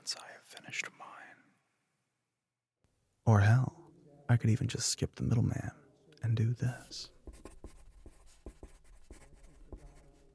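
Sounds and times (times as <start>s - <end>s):
speech: 3.3s - 3.7s, 4.3s - 7.2s
pen scratching across paper while writing: 6.8s - 10.3s.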